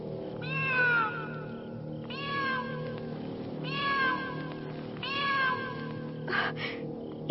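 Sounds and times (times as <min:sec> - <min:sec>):
low steady hum: 0:00.0 - 0:07.2
cat meowing: 0:00.4 - 0:01.5, 0:02.1 - 0:02.9, 0:03.6 - 0:06.1.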